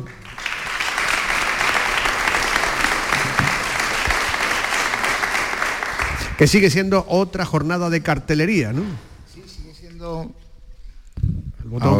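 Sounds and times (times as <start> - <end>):
applause from a room full of people greeting a guest: 0.0 - 6.8
speech: 6.4 - 9.1, 10.0 - 10.4, 11.7 - 11.9.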